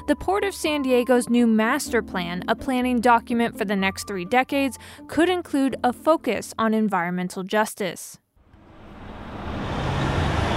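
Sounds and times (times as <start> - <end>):
speech: 0.1 - 8.2
broadband road noise: 8.4 - 10.5
trucks rumbling through a neighborhood street: 8.5 - 10.5.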